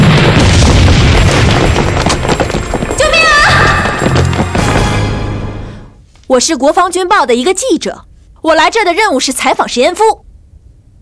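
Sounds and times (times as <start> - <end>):
crackling debris from a bomb blast: 0.0 - 5.4
time bomb exploding outside an auditorium: 0.0 - 6.0
speech: 6.3 - 10.2.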